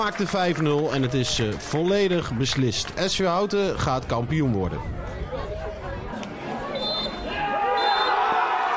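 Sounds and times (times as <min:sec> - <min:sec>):
speech: 0:00.0 - 0:05.1
football match crowd cheering and chatter: 0:00.0 - 0:08.7
referee's final whistle at a football match: 0:06.8 - 0:08.2.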